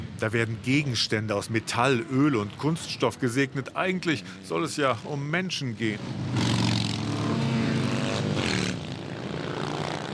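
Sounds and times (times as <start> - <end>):
many motorcycle engines roaring in a parade passing by: 0.0 - 10.1
speech: 0.2 - 6.5
motorcycle engine revving: 6.0 - 10.1.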